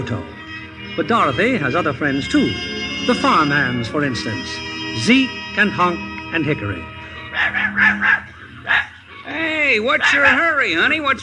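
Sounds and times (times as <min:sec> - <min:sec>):
speech: 0:00.0 - 0:00.4, 0:01.0 - 0:11.2
small dog barking: 0:07.3 - 0:09.0, 0:10.0 - 0:10.6.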